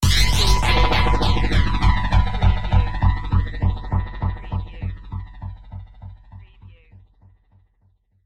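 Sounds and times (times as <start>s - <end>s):
fluttering sci-fi revelation sound: 0.0s - 6.1s.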